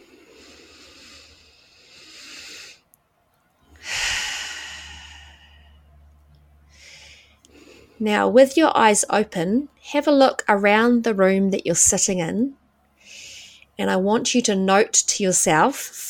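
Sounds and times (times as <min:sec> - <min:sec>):
slow deep breath in and out: 0:00.0 - 0:02.9, 0:03.7 - 0:05.9, 0:06.7 - 0:08.0, 0:13.0 - 0:13.7
speech: 0:08.0 - 0:12.6, 0:13.8 - 0:16.0.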